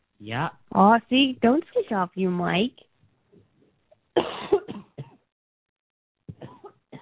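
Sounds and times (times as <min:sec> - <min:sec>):
speech: 0:00.2 - 0:02.9
harsh and throaty coughing: 0:04.2 - 0:05.2, 0:06.3 - 0:06.9.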